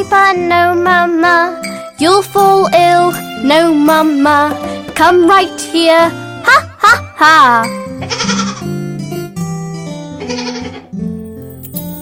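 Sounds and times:
speech: 0.0s - 8.4s
baby goat bleating: 8.0s - 8.7s, 10.2s - 10.9s.

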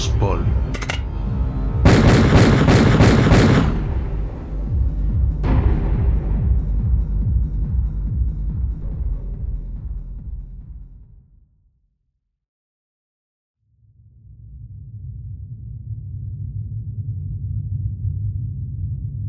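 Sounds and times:
low rumbling background: 0.0s - 11.2s, 14.1s - 19.2s
gunshots: 1.8s - 4.2s.

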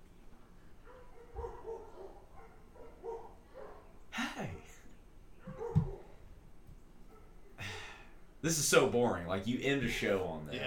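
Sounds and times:
dogs barking: 0.8s - 6.2s, 7.0s - 7.6s
speech: 8.4s - 10.6s.

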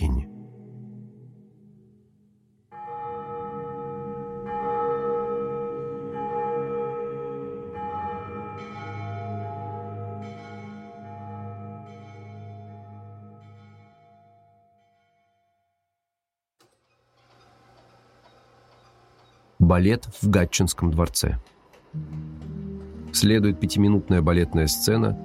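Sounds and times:
church bells pealing: 2.7s - 15.6s, 22.0s - 25.2s
speech: 19.7s - 21.6s, 23.2s - 25.2s.

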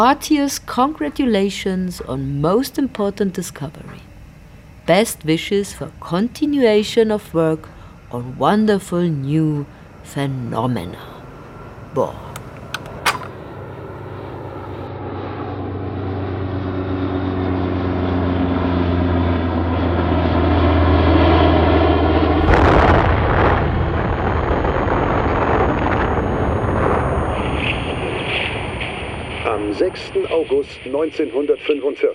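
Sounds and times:
speech: 0.0s - 4.1s, 4.9s - 11.1s, 11.9s - 12.2s, 30.0s - 32.1s
American airplane droning engine: 0.0s - 32.1s
atomic bomb explosion with broad roaring rumble: 22.3s - 30.2s.

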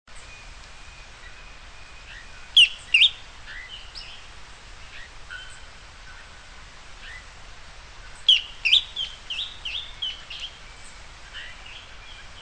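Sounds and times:
steady soft hiss: 0.1s - 12.4s
bird song of loud high chirps and slurred whistles: 2.1s - 3.8s, 8.3s - 10.5s.

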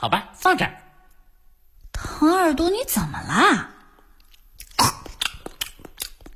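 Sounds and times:
speech: 0.0s - 0.8s, 2.2s - 3.7s
chewing fresh carrots: 3.9s - 6.3s.

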